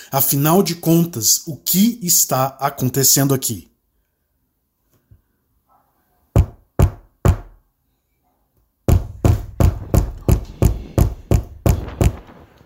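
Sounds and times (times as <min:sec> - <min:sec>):
speech: 0:00.1 - 0:03.7
loud heavy knocking on a door: 0:06.4 - 0:07.6, 0:08.9 - 0:12.2.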